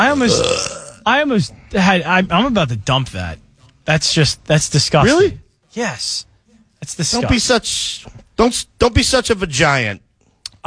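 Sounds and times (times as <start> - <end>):
loud burp: 0.0 - 1.1
speech: 0.0 - 10.0.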